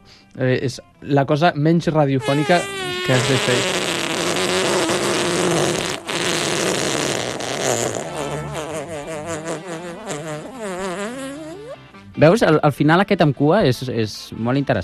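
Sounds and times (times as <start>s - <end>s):
speech: 0.4s - 3.8s, 12.2s - 14.8s
long loud fart: 2.2s - 11.8s.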